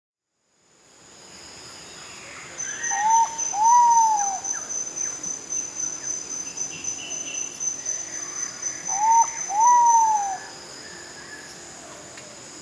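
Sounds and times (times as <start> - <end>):
constant insect whine: 1.1 - 12.6
giant pitta Pitta maxima calling with paired whistles: 2.6 - 4.7, 8.7 - 11.5.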